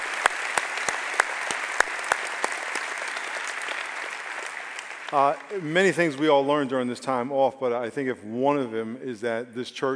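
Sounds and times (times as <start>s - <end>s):
audience applauding: 0.0s - 6.5s
speech: 5.1s - 9.9s.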